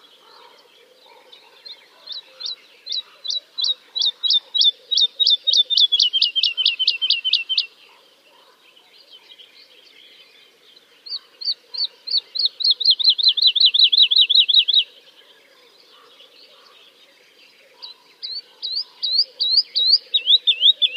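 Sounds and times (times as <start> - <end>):
woodlark singing clear repeated whistles: 2.4 - 7.7, 11.8 - 14.9, 18.3 - 20.9.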